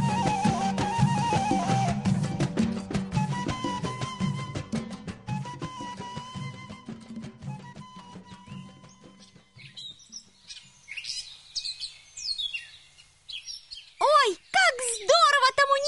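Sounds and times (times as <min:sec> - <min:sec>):
soft instrumental music: 0:00.0 - 0:10.2
birds chirping and trilling: 0:08.0 - 0:15.8.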